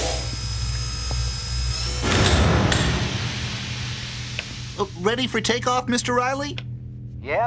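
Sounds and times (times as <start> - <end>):
steady electrical hum: 0.0 - 7.4
sliding door scraping shut: 1.9 - 4.8
speech: 4.8 - 7.4.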